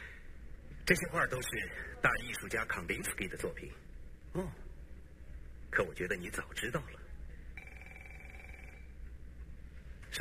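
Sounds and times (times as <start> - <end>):
low hum: 0.0 - 10.1
speech: 0.9 - 4.7, 5.7 - 7.0
telephone ringing with electronic trill: 7.6 - 9.0.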